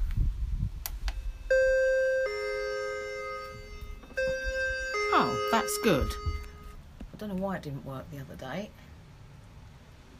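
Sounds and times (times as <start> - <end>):
faint wind rumble: 0.0 - 1.8, 3.2 - 7.2
wireless electronic doorbell chiming: 1.2 - 6.8
speech: 5.5 - 6.3, 7.2 - 8.9.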